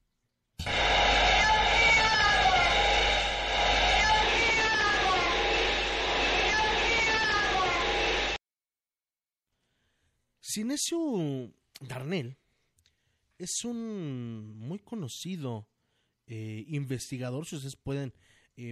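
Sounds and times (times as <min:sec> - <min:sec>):
eerie wavering moaning tones in a psychophony recording: 0:00.6 - 0:08.4
low rumble: 0:00.6 - 0:08.4
speech: 0:10.6 - 0:12.4, 0:13.4 - 0:15.7, 0:16.3 - 0:18.7.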